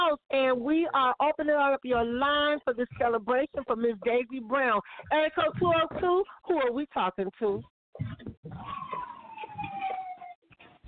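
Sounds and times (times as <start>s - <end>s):
speech: 0.1s - 8.9s
siren wailing over a muffled phone line: 8.5s - 10.4s.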